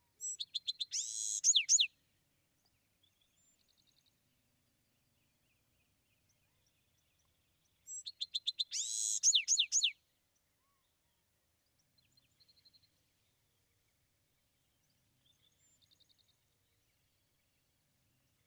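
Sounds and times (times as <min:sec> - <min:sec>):
Bewick's wren singing: 0:00.2 - 0:01.9, 0:07.9 - 0:09.9.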